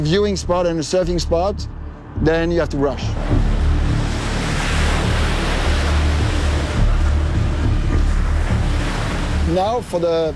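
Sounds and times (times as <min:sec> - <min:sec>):
speech: 0:00.0 - 0:03.4, 0:09.5 - 0:10.3
wind buffeting the microphone: 0:00.6 - 0:10.3
roar of rushing water of a tidal bore surging up a river: 0:03.1 - 0:10.3.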